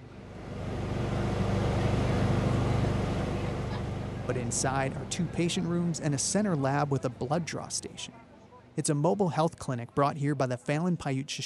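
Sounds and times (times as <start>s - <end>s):
large motorhome mobile health clinic engine idling at a park: 0.1s - 7.9s
speech: 4.3s - 8.2s, 8.8s - 11.4s.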